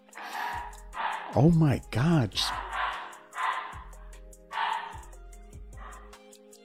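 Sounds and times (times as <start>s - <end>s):
dog barking and snarling aggressively while fighting a chicken toy: 0.1s - 1.5s, 2.5s - 5.2s, 5.8s - 6.2s
speech: 1.3s - 2.6s.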